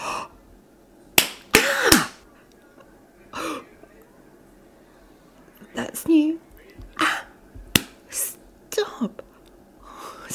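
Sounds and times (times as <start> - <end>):
sharp slaps on bare skin: 1.2 - 2.2, 7.7 - 8.0
speech: 6.0 - 6.5.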